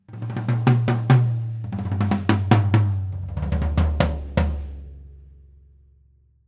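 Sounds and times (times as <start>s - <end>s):
drum tom fill: 0.1s - 5.0s.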